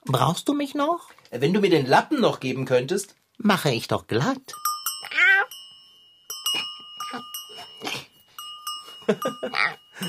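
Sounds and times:
speech: 0:00.1 - 0:05.2
small bell jingling around a neck: 0:04.5 - 0:10.0
laughter: 0:09.0 - 0:10.0.

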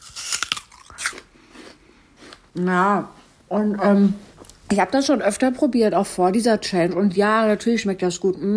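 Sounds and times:
biting and chewing a crunchy apple: 0:00.0 - 0:02.4
speech: 0:02.6 - 0:08.5.

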